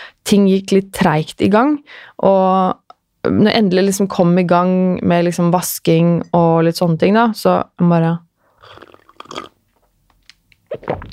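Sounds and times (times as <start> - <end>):
speech: 0.3 - 9.5, 10.7 - 11.1
person sipping lukewarm coffee: 8.5 - 9.6
swallowing coffee: 8.6 - 9.6.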